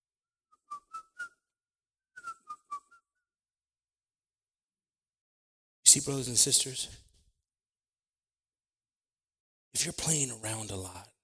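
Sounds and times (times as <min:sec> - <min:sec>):
person whistling a tune: 0:00.6 - 0:01.4, 0:02.2 - 0:03.2
speech: 0:05.9 - 0:07.1, 0:09.8 - 0:11.1.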